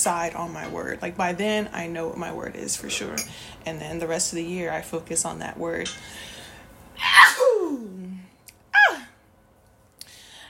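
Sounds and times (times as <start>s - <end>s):
speech: 0.0s - 6.4s
person sneezing: 7.0s - 7.6s.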